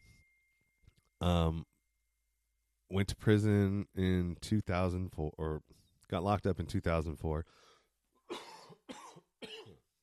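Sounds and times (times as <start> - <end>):
speech: 1.2 - 1.7, 2.9 - 7.7
harsh coughs: 8.3 - 9.8.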